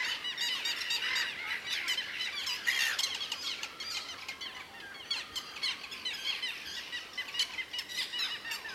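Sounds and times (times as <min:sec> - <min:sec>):
Little gulls Hydrocoloeus minutus squawking and chattering: 0:00.0 - 0:08.7.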